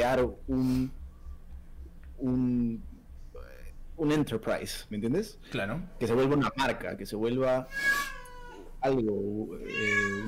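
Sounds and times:
speech: 0:00.0 - 0:01.0, 0:02.2 - 0:03.0, 0:04.0 - 0:08.2, 0:08.8 - 0:10.2
cat meowing with drawn-out high-pitched cries: 0:07.7 - 0:08.7, 0:09.6 - 0:10.2.

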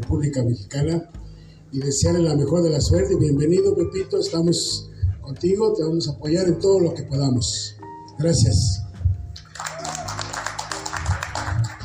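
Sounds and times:
speech: 0:00.1 - 0:08.8
audience applause: 0:09.4 - 0:11.8.

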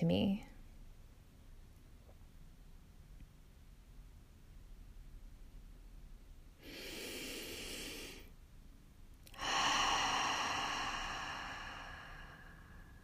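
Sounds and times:
speech: 0:00.0 - 0:00.5
slow deep breathing inhale and exhale: 0:06.6 - 0:08.3, 0:09.3 - 0:13.0.

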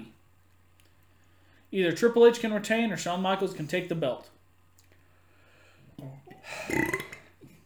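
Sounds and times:
speech: 0:01.7 - 0:04.4
loud drawn-out burp: 0:06.0 - 0:07.4.

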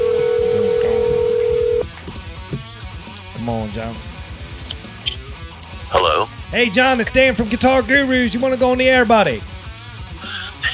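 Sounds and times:
loud steady telephone tone from a studio phone system placing a call: 0:00.0 - 0:01.9
speech: 0:03.5 - 0:04.2, 0:05.9 - 0:09.5.

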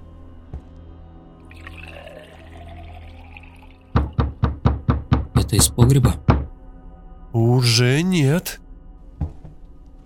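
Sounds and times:
wine pouring into a glass: 0:01.4 - 0:04.2
speech: 0:05.5 - 0:06.3, 0:07.4 - 0:08.6.

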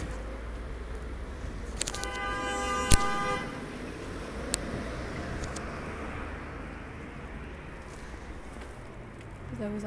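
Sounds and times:
constant rush of wind and road noise heard while cycling: 0:00.0 - 0:09.8
car horns honking in busy traffic: 0:01.8 - 0:03.9.

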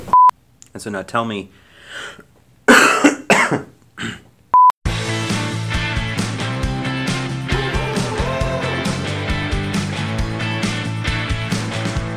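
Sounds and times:
speech: 0:00.8 - 0:02.3, 0:03.5 - 0:04.2
person coughing: 0:02.7 - 0:04.3
throat clearing: 0:02.7 - 0:04.3
steady music: 0:04.9 - 0:12.1.

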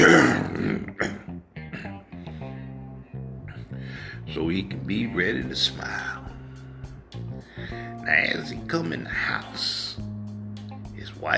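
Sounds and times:
man clearing his throat: 0:00.0 - 0:02.0
speech: 0:04.4 - 0:06.2, 0:08.1 - 0:10.1, 0:11.2 - 0:11.3.

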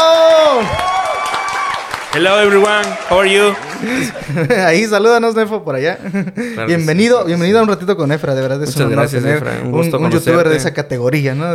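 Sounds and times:
people cheering: 0:00.0 - 0:04.4
applause: 0:00.5 - 0:04.1
speech: 0:02.2 - 0:11.5
laughter: 0:02.5 - 0:04.9, 0:06.0 - 0:06.7.

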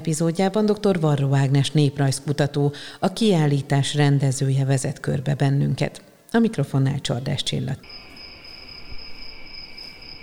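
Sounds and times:
speech: 0:00.0 - 0:08.0
crickets chirping: 0:07.8 - 0:10.2.

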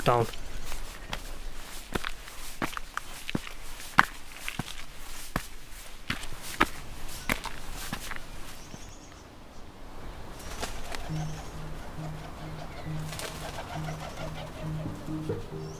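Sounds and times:
kereru wingbeats rustling in foliage: 0:00.1 - 0:09.1, 0:10.3 - 0:14.9
footsteps crunching on a forest path in New Zealand: 0:00.2 - 0:08.9
kereru New Zealand wood pigeons cooing: 0:10.5 - 0:15.7.

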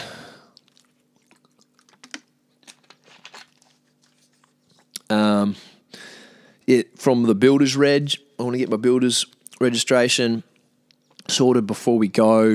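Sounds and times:
short loud voiced exhale: 0:00.0 - 0:00.6, 0:05.6 - 0:06.6
wet mouth clicks and sips: 0:00.5 - 0:05.1
speech: 0:06.7 - 0:10.5, 0:11.3 - 0:12.5.

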